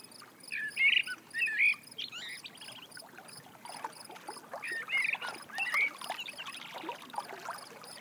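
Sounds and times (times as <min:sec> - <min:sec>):
bird singing in warbling phrases: 0:00.5 - 0:03.0, 0:04.6 - 0:06.7
gently lapping water: 0:02.2 - 0:07.9.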